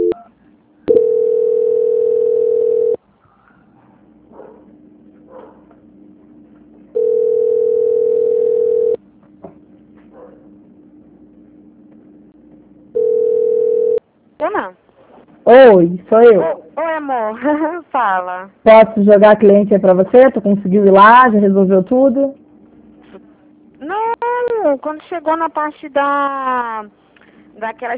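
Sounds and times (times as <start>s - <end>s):
telephone line tones while a dropped call is transferred: 0.0s - 0.3s, 0.9s - 3.0s, 7.0s - 9.0s, 13.0s - 14.0s
speech: 15.5s - 22.4s, 24.6s - 27.0s, 27.6s - 27.9s.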